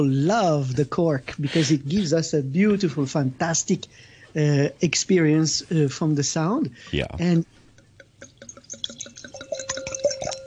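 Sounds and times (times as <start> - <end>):
speech: 0.0 - 7.6
golden five-year-old Bâtard white wine pouring into a glass: 8.0 - 10.4.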